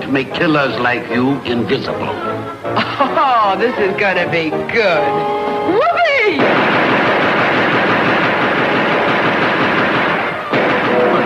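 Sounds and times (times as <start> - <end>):
speech: 0.1 - 6.7
laughter: 2.7 - 3.5
rapid automatic gunfire barrage: 6.4 - 11.2.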